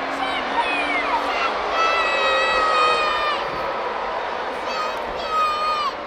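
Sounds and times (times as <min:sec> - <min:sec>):
child screaming: 0:00.1 - 0:03.5, 0:04.6 - 0:06.0.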